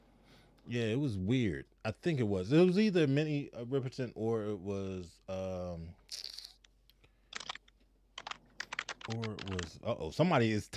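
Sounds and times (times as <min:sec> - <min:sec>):
speech: 0:00.7 - 0:06.0, 0:09.1 - 0:10.7
typing on a computer keyboard: 0:07.3 - 0:09.8.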